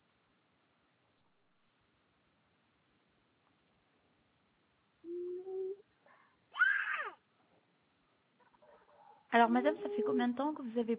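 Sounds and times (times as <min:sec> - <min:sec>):
baby crying: 0:06.5 - 0:07.2, 0:09.6 - 0:10.4
speech: 0:09.3 - 0:10.9.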